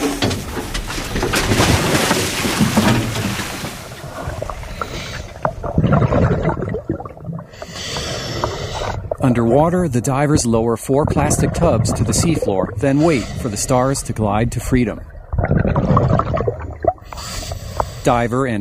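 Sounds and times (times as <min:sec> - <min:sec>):
gear being handled on a boat deck: 0:00.0 - 0:03.6
wash of water on open water: 0:00.0 - 0:17.3
boat rumbling on open water: 0:00.0 - 0:18.6
speech: 0:09.3 - 0:15.1, 0:18.0 - 0:18.6.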